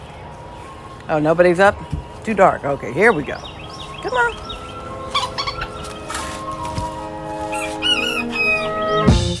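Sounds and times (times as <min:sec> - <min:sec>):
speech: 0:01.1 - 0:04.6
sharper crowing-like cries: 0:04.5 - 0:06.5, 0:07.3 - 0:09.2
backyard chickens clucking and squawking in a coop in North Carolina: 0:04.8 - 0:09.2.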